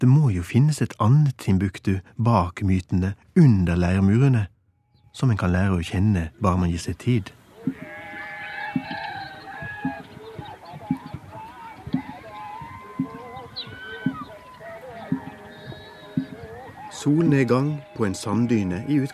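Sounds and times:
speech: 0.0s - 4.5s, 5.2s - 7.9s, 17.0s - 19.1s
busy outdoor noise: 0.0s - 19.1s
goats and sheep bleating as a herd is driven home: 7.4s - 19.1s
dull thuds: 7.6s - 18.0s.

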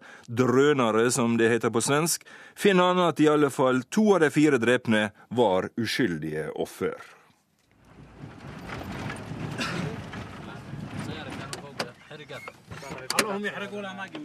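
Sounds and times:
speech: 0.3s - 7.2s, 12.4s - 14.2s
sharp clicks and knocks: 7.6s - 13.4s
car crunching over a gravel road south of Yemen's capital: 7.6s - 14.2s.

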